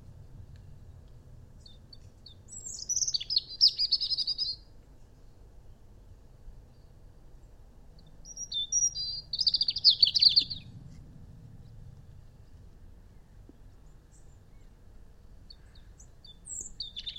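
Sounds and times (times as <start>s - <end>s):
faint low rumble: 0.0s - 17.1s
European robin Erithacus rubecula singing: 1.6s - 5.4s, 6.7s - 10.7s, 15.4s - 17.1s.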